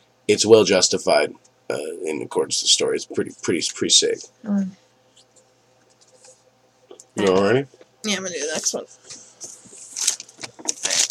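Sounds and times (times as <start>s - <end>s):
speech: 0.3s - 4.8s, 7.2s - 9.2s
small stack of question cards shuffled by hand: 9.5s - 11.0s.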